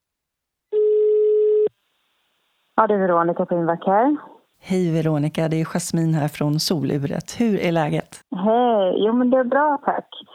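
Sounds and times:
electronic telephone ringback tone while placing a call: 0.7 - 1.7
speech: 2.8 - 10.3.

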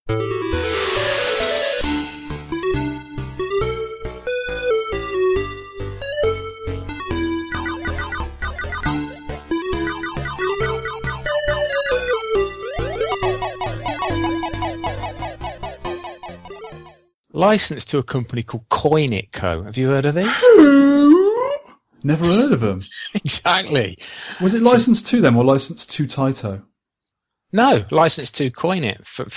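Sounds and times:
1986 arcade video game electronic music: 0.1 - 17.1
noisy synthesized sweep from an arcade video game: 0.5 - 2.4, 9.8 - 16.5
speech: 17.4 - 21.3, 22.0 - 26.7, 27.5 - 29.3.

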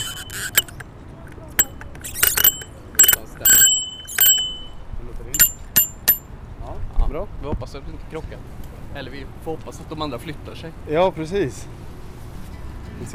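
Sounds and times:
bicycle bell ringing as a sound check: 0.0 - 4.8, 5.4 - 6.3
speech: 7.6 - 11.8.

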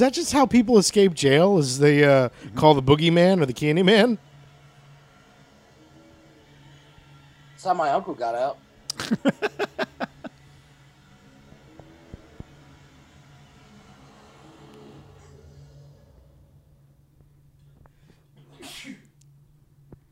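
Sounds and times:
speech: 0.0 - 4.3, 7.6 - 9.9
low steady hum: 0.0 - 20.1
laughter: 8.9 - 10.6
person sneezing: 18.4 - 19.1.

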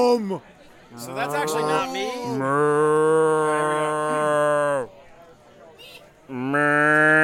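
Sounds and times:
speech: 0.0 - 4.9
person imitating a cow mooing: 1.3 - 4.9, 6.3 - 7.2.

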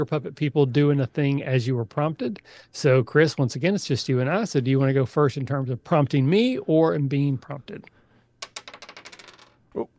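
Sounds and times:
speech: 0.0 - 8.0, 9.8 - 9.9
dice rolled across a hard surface: 8.4 - 9.6.

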